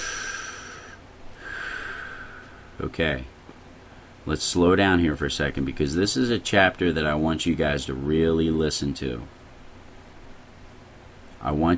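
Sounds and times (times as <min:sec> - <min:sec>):
deep breath drawn and released during a Bible lesson: 0:00.0 - 0:02.8
speech: 0:02.8 - 0:03.3, 0:04.2 - 0:09.4, 0:11.4 - 0:11.7.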